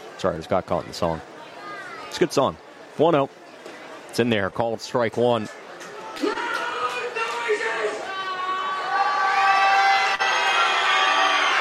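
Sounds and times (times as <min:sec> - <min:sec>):
speech: 0:00.2 - 0:01.4, 0:02.1 - 0:03.4, 0:04.1 - 0:05.6
crowd of baseball fans screaming and cheering in the stands: 0:06.0 - 0:11.5.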